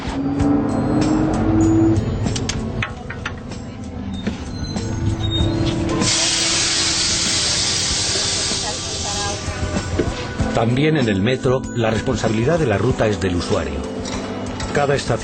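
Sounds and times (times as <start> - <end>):
city bus engine droning as it stops at a bus shelter: 0.0 - 10.5
city bus air brakes hissing: 4.2 - 9.8
speech: 10.6 - 14.0, 14.8 - 15.2.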